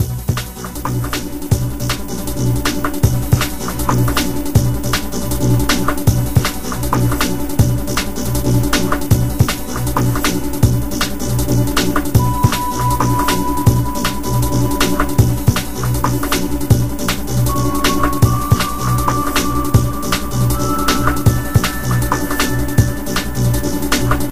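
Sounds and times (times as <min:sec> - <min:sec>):
jukebox music: 0:00.0 - 0:24.3.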